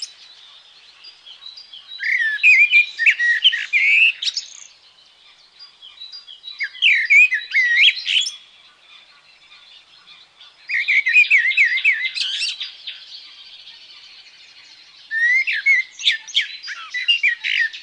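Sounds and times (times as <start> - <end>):
common blackbird singing fluty warbling phrases with squeaky twitters: 0.0 - 17.8.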